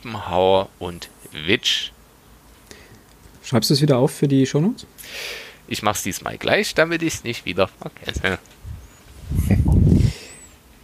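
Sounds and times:
speech: 0.0 - 2.0, 3.4 - 8.6
loud breath gusting into the microphone: 5.0 - 5.6, 9.9 - 10.5.

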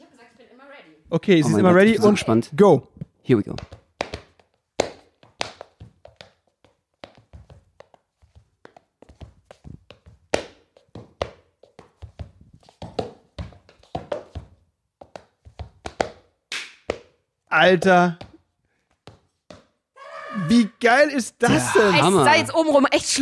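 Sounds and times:
speech: 0.9 - 3.8, 17.6 - 18.2, 20.5 - 23.2
tap dance steps on a hard floor: 3.0 - 17.2, 17.8 - 19.8
laughter: 21.4 - 22.5.

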